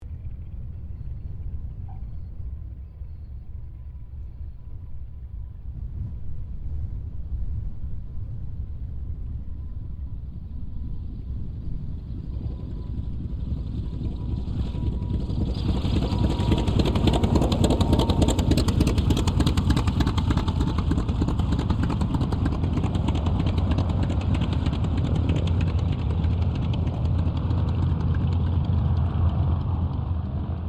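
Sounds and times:
T-28D Trojan aircraft landing: 0.0s - 30.6s.

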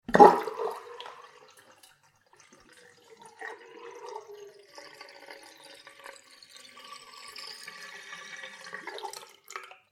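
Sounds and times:
slight gargle from kitchen sink plughole: 0.0s - 1.2s
water draining from a full small kitchen sink after plug pulled: 0.0s - 9.9s.

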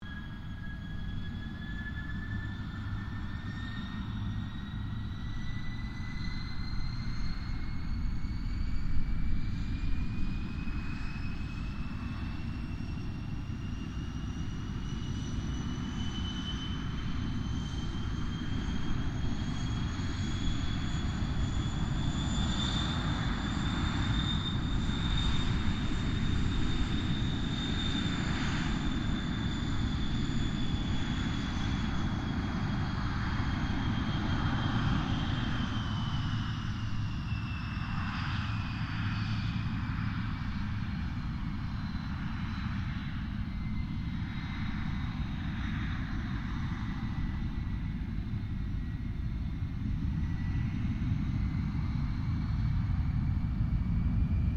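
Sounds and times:
distant Gloster Meteor F Mk8 fighter jet taxiing: 0.0s - 54.5s.

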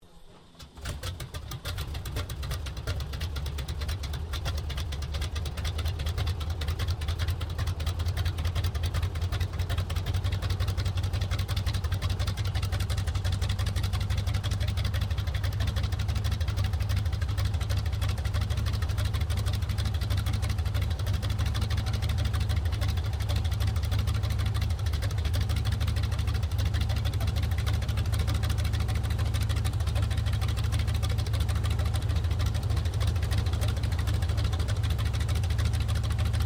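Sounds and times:
CAC Wirraway CA-16 aircraft engine starting up: 0.0s - 19.7s, 20.7s - 36.3s.

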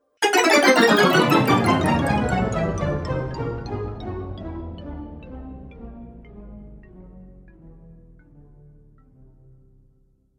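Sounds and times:
fantasy magic slow time spell sound effect: 0.2s - 4.2s.

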